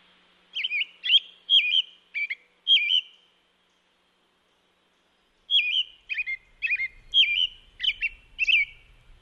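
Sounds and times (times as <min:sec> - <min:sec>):
American robin singing: 0:00.5 - 0:09.2.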